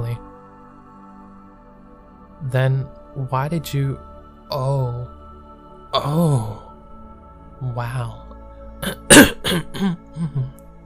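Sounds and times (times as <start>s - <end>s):
speech: 2.4s - 5.2s, 5.9s - 6.6s, 7.6s - 8.2s, 8.8s - 10.6s
man clearing his throat: 8.8s - 10.6s.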